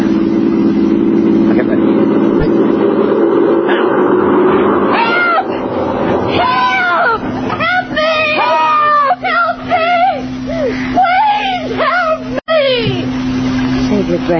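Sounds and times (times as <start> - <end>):
low car rumble passing overhead: 0.0 - 14.3
several people yelling together: 4.9 - 5.6, 6.2 - 10.3, 10.9 - 12.9.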